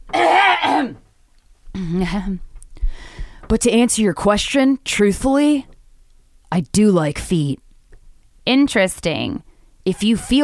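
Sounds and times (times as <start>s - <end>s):
person clearing throat: 0.1s - 1.0s
speech: 2.0s - 2.5s, 3.5s - 5.7s, 6.5s - 7.6s, 8.5s - 10.4s.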